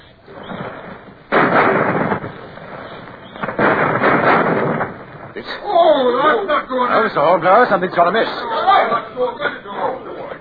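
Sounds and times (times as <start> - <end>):
sustained roaring rumble of ship's cannon blast: 0.2 - 6.5
ship's cannon firing: 0.3 - 6.4
speech: 5.4 - 9.9.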